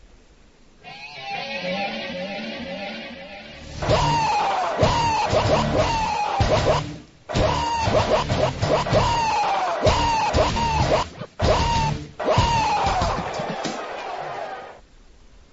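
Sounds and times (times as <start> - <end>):
goat screaming: 0.8 - 14.7
pounding beat: 3.8 - 14.2.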